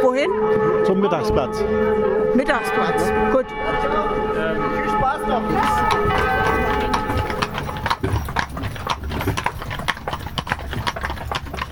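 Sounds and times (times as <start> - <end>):
speech: 0.0 - 6.6
horse hooves clip-clopping on a hard surface as horses are led: 5.5 - 11.7.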